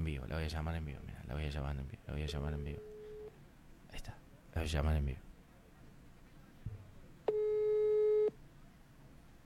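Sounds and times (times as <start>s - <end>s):
speech: 0.2s - 2.9s, 3.9s - 5.3s
telephone busy tone: 2.8s - 3.3s, 7.3s - 8.3s.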